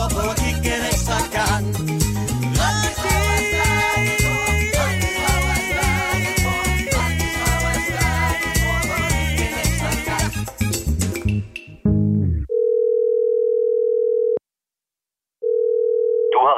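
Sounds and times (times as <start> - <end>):
busy music: 0.0 - 12.5
telephone line tone before answering machine: 12.5 - 14.4, 15.4 - 16.4.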